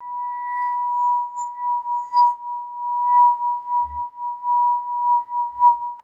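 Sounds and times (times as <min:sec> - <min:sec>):
squeaky rubbing on a crystal wine glass: 0:00.0 - 0:06.0.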